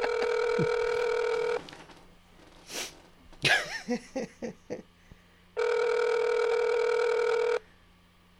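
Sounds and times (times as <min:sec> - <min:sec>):
phone ringback tone: 0:00.0 - 0:01.6, 0:05.6 - 0:07.6
person sniffing: 0:02.6 - 0:03.0.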